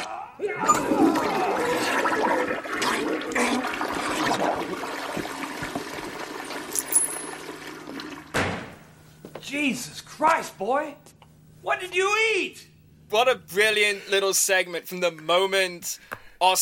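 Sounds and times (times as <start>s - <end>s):
toilet flushing: 0.6s - 8.4s
speech: 9.7s - 16.5s.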